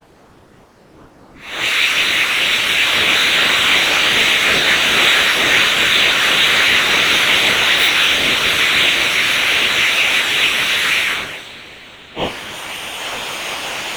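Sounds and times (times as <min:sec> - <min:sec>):
long breathing: 0:01.4 - 0:13.8.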